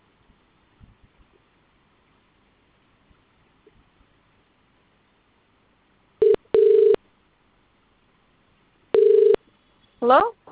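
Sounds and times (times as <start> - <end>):
phone ringing tone of a test call being placed: 6.2 - 7.0, 8.9 - 9.4
speech: 10.0 - 10.4.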